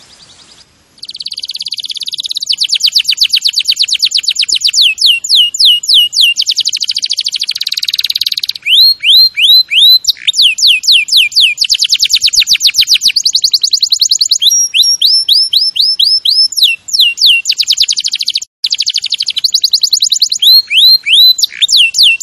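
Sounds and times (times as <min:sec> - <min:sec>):
champion canary singing: 0:00.0 - 0:22.2.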